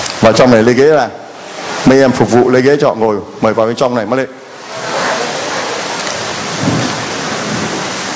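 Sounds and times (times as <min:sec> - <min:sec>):
heavy rain: 0:00.0 - 0:03.5, 0:04.4 - 0:08.1
speech: 0:00.2 - 0:01.2, 0:01.8 - 0:04.4
low rumble of thunder: 0:06.4 - 0:08.0.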